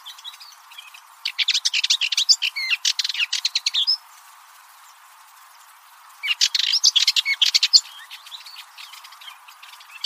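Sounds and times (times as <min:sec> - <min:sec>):
bird chirps and twitters: 0:00.0 - 0:04.0, 0:06.2 - 0:10.0.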